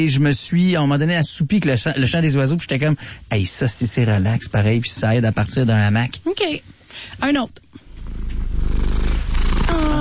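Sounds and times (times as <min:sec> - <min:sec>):
speech: 0:00.0 - 0:07.8
cat purring: 0:07.9 - 0:10.0.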